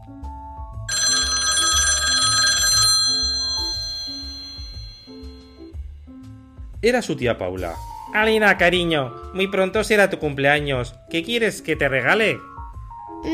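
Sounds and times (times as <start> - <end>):
gentle music: 0.0 - 13.3
telephone bell ringing: 0.9 - 5.7
speech: 6.8 - 12.5.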